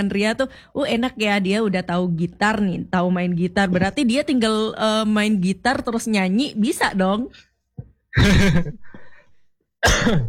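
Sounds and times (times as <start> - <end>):
speech: 0.0 - 7.5, 8.2 - 9.0, 9.8 - 10.2
person coughing with a throaty rasp: 8.1 - 9.1, 9.8 - 10.2.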